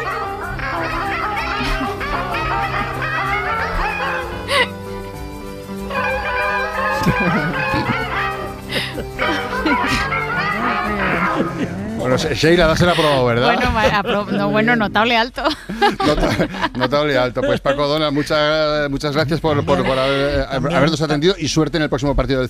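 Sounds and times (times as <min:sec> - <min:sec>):
laughter: 0:00.0 - 0:04.8, 0:06.0 - 0:21.2
seagulls crying: 0:00.0 - 0:04.9, 0:05.9 - 0:11.8
sustained orchestral music: 0:00.0 - 0:15.2
speech: 0:12.2 - 0:22.4.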